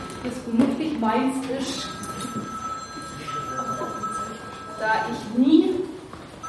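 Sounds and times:
speech: 0.2 - 2.5, 4.8 - 5.8
telephone ringing with electronic trill: 1.8 - 5.4.

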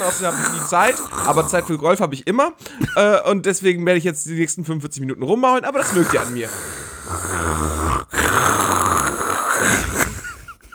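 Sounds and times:
person imitating snoring with rasping breaths: 0.0 - 2.0, 5.8 - 10.6
speech: 0.0 - 7.9.

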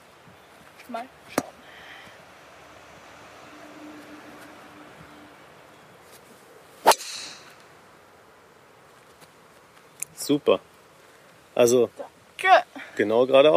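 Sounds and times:
faint steady outdoor ambience: 0.0 - 13.5
speech: 0.9 - 1.6, 10.3 - 10.7, 11.6 - 13.5
golf club striking the ball on a small fade shot: 6.8 - 7.7.

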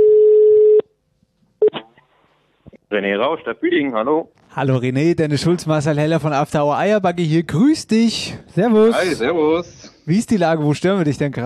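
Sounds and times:
steady loud telephone line tone: 0.0 - 0.8
speech: 2.9 - 11.4.

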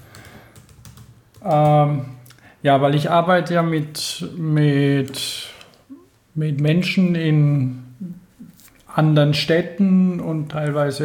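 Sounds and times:
typing on a computer keyboard: 0.0 - 1.8
speech: 1.4 - 5.3, 6.4 - 8.1, 9.0 - 11.0.

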